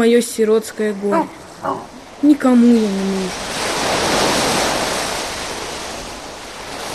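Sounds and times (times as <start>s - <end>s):
speech: 0.0s - 3.5s
sea waves surging and foaming: 0.6s - 6.9s.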